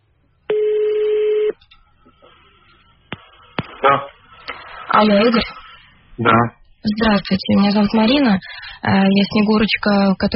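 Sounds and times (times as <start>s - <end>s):
steady tone on an analog phone line: 0.5s - 1.6s
speech: 5.0s - 5.6s, 6.2s - 10.3s.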